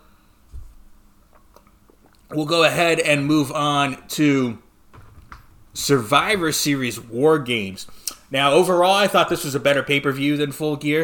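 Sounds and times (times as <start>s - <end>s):
faint wet mouth clicks: 1.3s - 2.3s, 8.0s - 8.3s
person sipping soda: 1.3s - 2.3s
speech: 2.3s - 4.6s, 5.8s - 11.0s.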